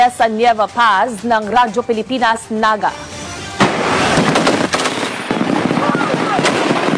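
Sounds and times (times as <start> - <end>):
speech: 0.0 - 3.2
rapid gunfire from Philippine and Australian Army ground forces during a live fire exercise: 3.6 - 6.9.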